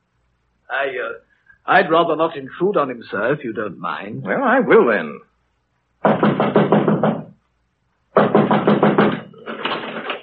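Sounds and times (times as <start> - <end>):
speech: 0.7 - 5.3, 6.0 - 6.9
knocking on a locked wooden study door: 6.0 - 7.4, 8.2 - 9.3.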